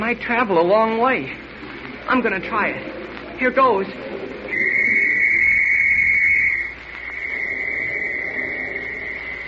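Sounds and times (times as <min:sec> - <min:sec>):
speech: 0:00.0 - 0:01.5, 0:02.1 - 0:04.2
police whistle blast: 0:04.5 - 0:09.4.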